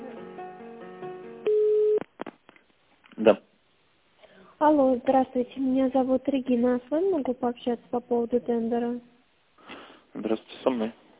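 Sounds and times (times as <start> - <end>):
telephone hold tones during a call transfer: 1.4 - 2.1
telephone line beep tone: 1.5 - 2.0
speech: 3.2 - 3.5, 4.6 - 9.1, 10.2 - 11.0.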